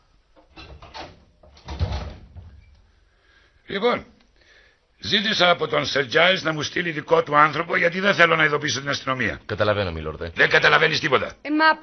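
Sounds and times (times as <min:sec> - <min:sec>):
door rattling: 0:00.5 - 0:02.8
speech: 0:03.7 - 0:04.2, 0:05.0 - 0:11.8.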